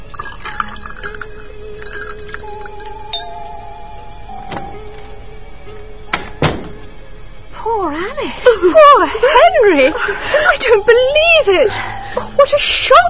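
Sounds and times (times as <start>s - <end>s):
water pouring into a glass with ice: 0.0s - 3.2s
glass clinks and knocks: 0.1s - 3.8s
speech: 8.4s - 13.0s.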